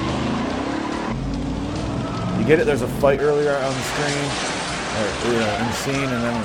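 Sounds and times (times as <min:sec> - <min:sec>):
car engine roaring: 0:00.0 - 0:06.4
car tires skidding during a chase: 0:00.0 - 0:06.4
speech: 0:02.4 - 0:06.4.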